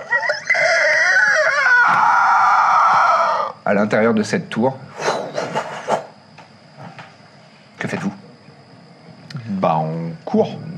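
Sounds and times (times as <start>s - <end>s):
woman screaming: 0.2s - 3.5s
speech: 3.8s - 4.9s, 9.6s - 10.7s.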